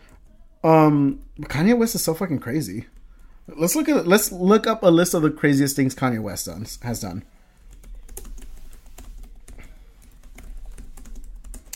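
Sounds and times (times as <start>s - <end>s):
speech: 0.6s - 7.3s
typing on a computer keyboard: 7.7s - 11.7s.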